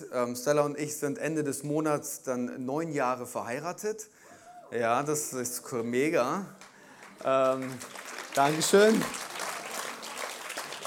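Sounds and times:
speech: 0.1 - 9.2
audience applause: 6.6 - 10.8.

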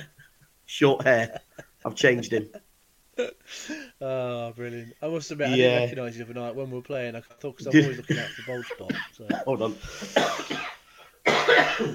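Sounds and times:
speech: 0.7 - 2.6, 3.2 - 10.7, 11.4 - 11.9
person coughing: 8.7 - 11.9.

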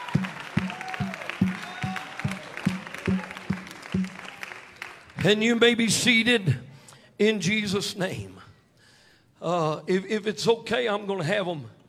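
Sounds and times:
audience clapping in rhythm during an evening worship service: 0.0 - 5.5
speech: 5.2 - 6.6, 7.2 - 8.4, 9.4 - 11.8.

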